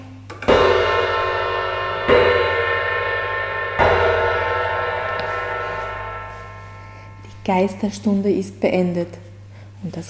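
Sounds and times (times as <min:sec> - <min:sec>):
tower clock bell striking the hour: 0:00.5 - 0:08.0
speech: 0:07.5 - 0:10.0.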